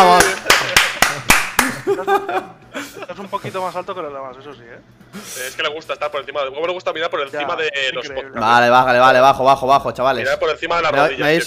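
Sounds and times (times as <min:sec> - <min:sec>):
sharp hand claps: 0:00.0 - 0:01.9
voiced laughter: 0:00.4 - 0:03.3
speech: 0:02.1 - 0:11.4.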